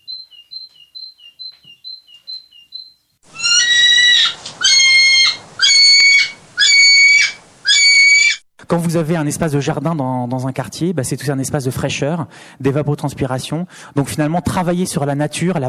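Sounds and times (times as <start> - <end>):
great tit singing: 0.0 - 8.4
speech: 8.7 - 15.6.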